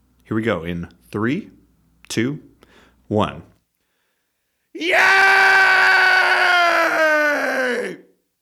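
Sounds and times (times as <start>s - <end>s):
speech: 0.3s - 2.5s, 3.1s - 3.5s, 4.8s - 5.5s
group cathartic scream: 4.8s - 8.1s.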